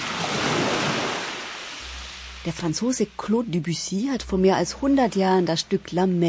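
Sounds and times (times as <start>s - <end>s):
sea surf with crashing waves: 0.0s - 3.3s
speech: 2.4s - 6.2s.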